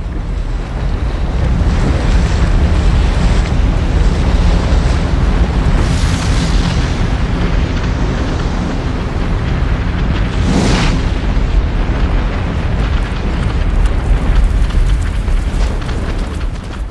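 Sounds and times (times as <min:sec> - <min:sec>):
volcanic eruption roar with bubbling lava: 0:00.0 - 0:16.8.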